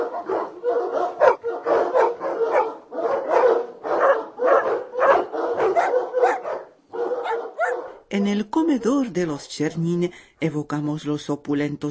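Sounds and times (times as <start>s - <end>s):
pack of hunting hounds barking and baying: 0.0s - 8.0s
speech: 8.2s - 11.9s.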